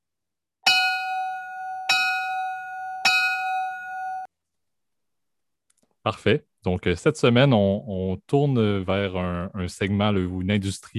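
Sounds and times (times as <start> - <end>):
bell ringing with bright metallic strikes: 0.6 - 4.3
speech: 6.0 - 10.9.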